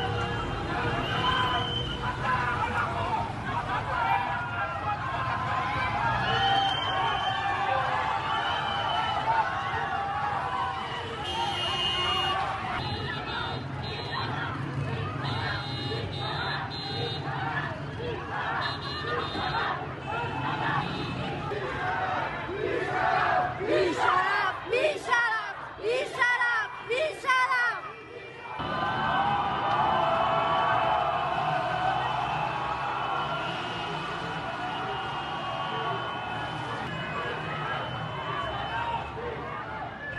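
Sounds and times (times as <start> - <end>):
large protest crowd chanting and shouting outside a hospital: 0.0 - 40.1
car horns: 11.0 - 14.4, 15.2 - 17.4, 18.5 - 21.4, 32.1 - 39.0.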